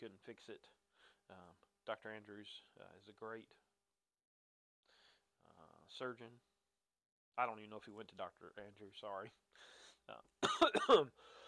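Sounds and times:
speech: 0.0 - 3.6, 5.4 - 6.5, 7.4 - 11.4
throat clearing: 10.4 - 11.1
person coughing harshly: 10.4 - 11.2.

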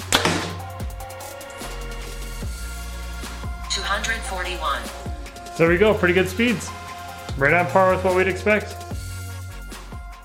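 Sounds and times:
compound bow firing a heavy 687-grain arrow: 0.0 - 0.8
music with low regular thumps: 0.0 - 10.2
speech: 3.8 - 6.8, 7.4 - 8.8.

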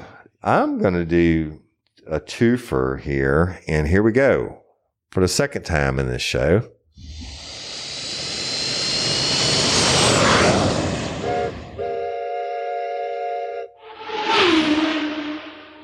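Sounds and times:
speech: 0.4 - 7.3
brief rising vehicle sound: 7.0 - 12.2, 13.5 - 15.8
airplane engine sound effect roar: 7.0 - 12.9, 13.6 - 15.8
steady horn-like tones: 11.2 - 15.8.

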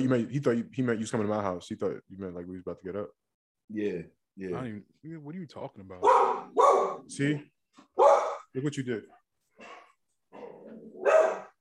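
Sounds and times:
speech: 0.0 - 7.9, 8.5 - 9.7
dog barking: 6.0 - 7.1, 8.0 - 8.5, 10.8 - 11.5.

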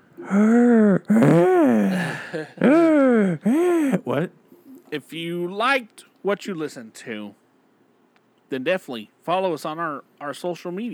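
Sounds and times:
loud exaggerated heavy breathing sliding into groaning moan-like tones: 0.0 - 4.3
speech: 0.2 - 7.4, 8.5 - 10.9.

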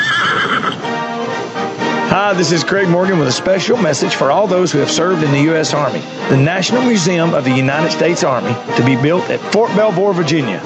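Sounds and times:
horse whinnying loudly: 0.0 - 1.1
speech: 2.2 - 10.6.

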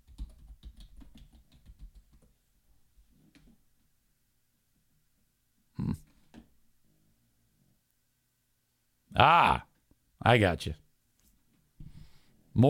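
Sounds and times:
typing on a computer keyboard: 0.0 - 2.3
speech: 9.2 - 10.8.

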